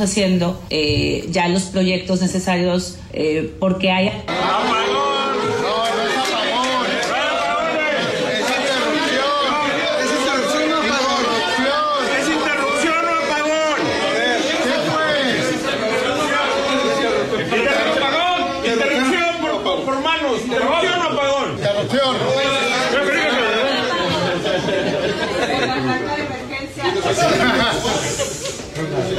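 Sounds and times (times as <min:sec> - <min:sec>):
speech: 0:00.0 - 0:04.9
crowd chatter after power outage: 0:03.7 - 0:29.1
crowd exclamations: 0:04.3 - 0:19.4
laughter: 0:04.3 - 0:19.9, 0:20.6 - 0:29.1.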